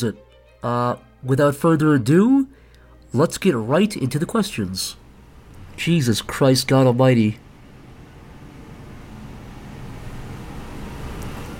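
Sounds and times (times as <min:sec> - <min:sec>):
speech: 0:00.0 - 0:02.5, 0:03.1 - 0:05.0, 0:05.8 - 0:07.4
garbage truck engine rumbling outside: 0:05.0 - 0:11.5.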